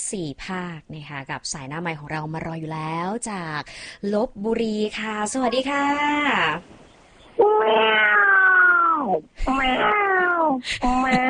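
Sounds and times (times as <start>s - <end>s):
speech: 0.1s - 6.8s, 7.4s - 8.4s, 9.0s - 9.9s, 10.5s - 11.2s
cat meowing with drawn-out wavering calls: 7.4s - 10.5s.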